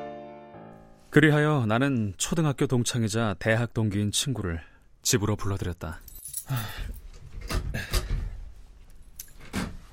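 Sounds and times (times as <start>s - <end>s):
speech: 1.1s - 7.0s
keys jingling: 6.0s - 7.1s, 8.9s - 9.5s.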